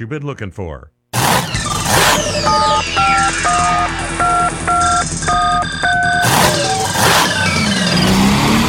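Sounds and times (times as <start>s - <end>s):
speech: 0.0s - 5.4s
engine revving in short bursts: 1.2s - 8.6s
telephone keypad beeps: 2.1s - 7.0s.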